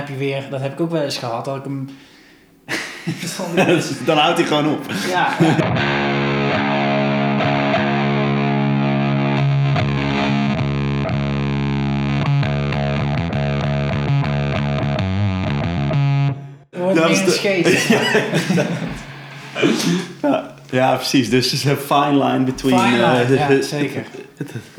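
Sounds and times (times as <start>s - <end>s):
speech: 0.1s - 2.1s, 2.7s - 6.3s, 17.2s - 19.0s, 19.6s - 24.7s
laughter: 2.7s - 5.8s, 16.8s - 24.7s
hard-struck heavily distorted electric guitar chords through effects: 5.6s - 16.6s.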